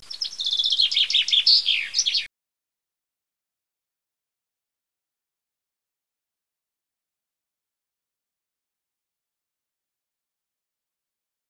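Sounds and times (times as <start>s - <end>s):
birds: 0.0s - 2.3s.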